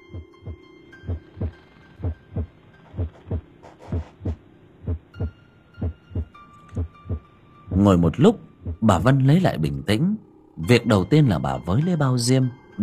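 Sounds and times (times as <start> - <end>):
pounding heartbeat sound effect: 0.0 - 7.8
speech: 7.8 - 12.8.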